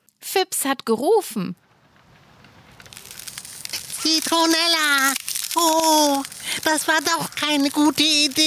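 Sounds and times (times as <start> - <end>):
speech: 0.4 - 1.6, 4.0 - 8.4
ice crackling and cracking underfoot: 2.1 - 8.4.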